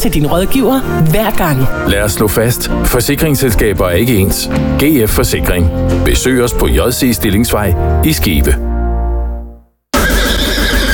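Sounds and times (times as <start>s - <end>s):
speech: 0.0s - 8.7s
horse neighing at a harness-racing trotting track: 9.9s - 10.9s.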